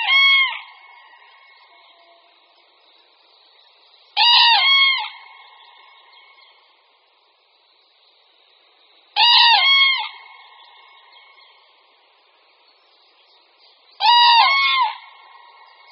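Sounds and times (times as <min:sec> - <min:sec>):
common cranes trumpeting bugle calls: 0:04.2 - 0:05.2, 0:09.2 - 0:10.4, 0:14.0 - 0:15.2.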